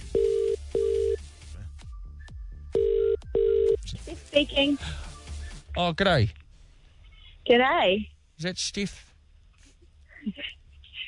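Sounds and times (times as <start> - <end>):
telephone ringing tone on an outgoing call: 0.1 - 1.2, 2.8 - 3.8
speech: 4.4 - 5.0, 5.8 - 6.4, 7.5 - 9.1, 10.2 - 10.5.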